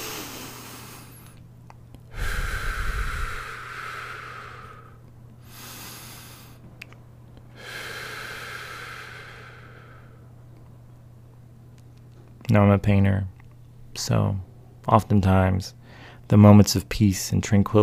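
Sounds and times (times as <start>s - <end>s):
slow deep breathing during meditation: 0.0s - 1.4s, 2.1s - 6.6s, 7.5s - 10.3s, 15.8s - 16.3s
faint steady low hum: 0.0s - 17.8s
speech: 12.5s - 13.4s, 14.0s - 17.8s.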